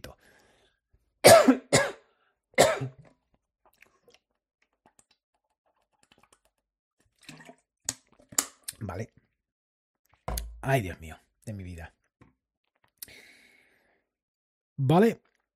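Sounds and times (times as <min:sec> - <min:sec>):
person coughing after drinking water: 0:01.2 - 0:02.0, 0:02.6 - 0:03.0
speech: 0:02.8 - 0:03.0, 0:08.9 - 0:09.2, 0:10.6 - 0:12.0, 0:14.8 - 0:15.3.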